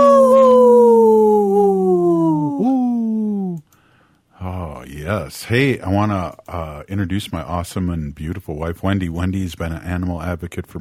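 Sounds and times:
wolf howling: 0:00.0 - 0:03.4
speech: 0:05.1 - 0:10.8.

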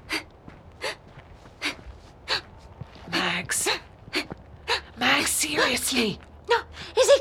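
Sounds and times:
heavy rapid breathing: 0:00.0 - 0:05.0
speech: 0:03.4 - 0:03.9, 0:05.5 - 0:06.6.

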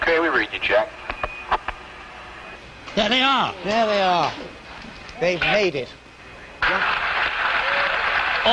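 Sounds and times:
speech: 0:00.1 - 0:01.0, 0:03.0 - 0:04.6, 0:05.2 - 0:06.0
crowd cheering and applauding on a boat: 0:06.6 - 0:08.5
whoops and shouting voices: 0:07.5 - 0:08.1.

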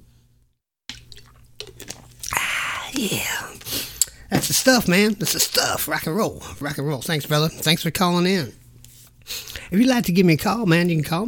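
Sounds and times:
person gulping whiskey: 0:00.9 - 0:04.3
person sipping a shot of Jack Daniel's whiskey: 0:00.9 - 0:04.3
speech: 0:02.9 - 0:03.8, 0:04.4 - 0:08.6, 0:09.3 - 0:11.2.

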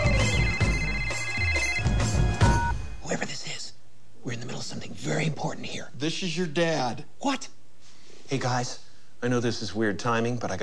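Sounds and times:
telephone ringing on an outgoing call: 0:00.0 - 0:03.0
speech: 0:04.6 - 0:07.5, 0:08.3 - 0:10.6.

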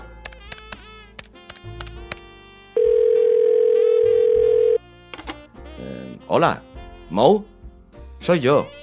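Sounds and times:
telephone dial tone: 0:02.8 - 0:04.8
speech: 0:06.3 - 0:07.5, 0:08.2 - 0:08.8.

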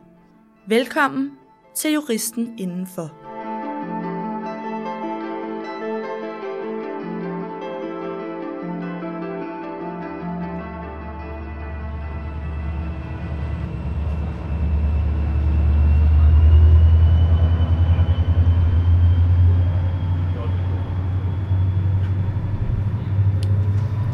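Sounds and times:
speech: 0:00.7 - 0:03.2
train rumbling past at Høje Taastrup station: 0:11.3 - 0:24.1.

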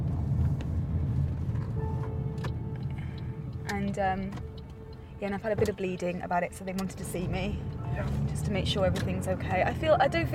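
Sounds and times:
road traffic rumble: 0:00.0 - 0:10.3
speech: 0:03.9 - 0:04.5, 0:05.2 - 0:10.3.

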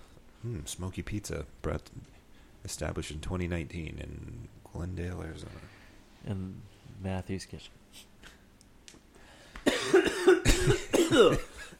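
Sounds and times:
speech: 0:00.4 - 0:08.1, 0:10.6 - 0:11.7
person coughing in a smoky kitchen: 0:09.6 - 0:11.7.

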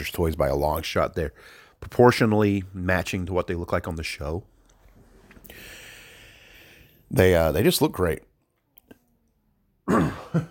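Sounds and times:
speech: 0:00.0 - 0:04.5, 0:07.1 - 0:08.3, 0:09.9 - 0:10.4
rough throaty cough: 0:09.9 - 0:10.4.

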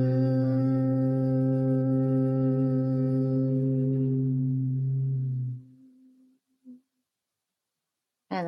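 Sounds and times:
low-pitched human hum in a guided breathing exercise: 0:00.0 - 0:06.2.

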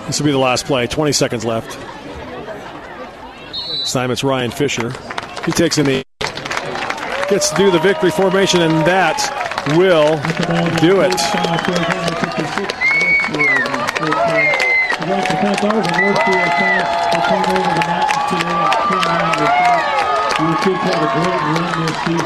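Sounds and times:
speech: 0:00.1 - 0:02.1, 0:03.8 - 0:06.0, 0:07.3 - 0:22.2
large crowd of football fans cheering and shouting: 0:06.9 - 0:22.2.

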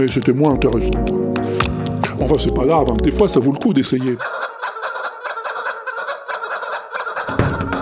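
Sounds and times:
speech: 0:00.0 - 0:04.4
plastic rubber chickens squawking and squeaking rhythmically: 0:03.6 - 0:07.8.

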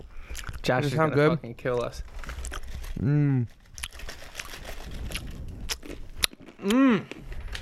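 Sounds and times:
speech: 0:00.7 - 0:02.3, 0:03.0 - 0:03.6, 0:06.6 - 0:07.2
crunchy chewing of almonds: 0:02.0 - 0:07.6.

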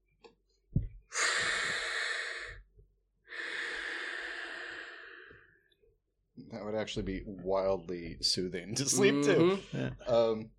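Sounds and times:
soft airy breaths with a gentle hiss: 0:01.1 - 0:02.6, 0:03.3 - 0:05.6
speech: 0:06.5 - 0:10.5.

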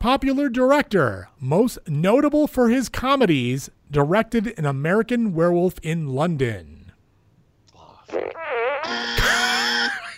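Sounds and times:
speech: 0:00.0 - 0:06.8
fart noise used as quiz buzzer: 0:08.1 - 0:10.1.

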